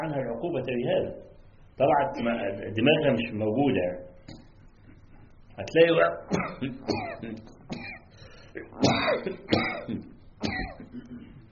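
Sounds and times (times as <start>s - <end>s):
speech: 0.0s - 4.4s, 5.6s - 7.6s, 8.5s - 11.1s
person clearing throat during a religious lecture: 6.0s - 11.5s
person coughing during a religious lecture: 6.3s - 11.5s.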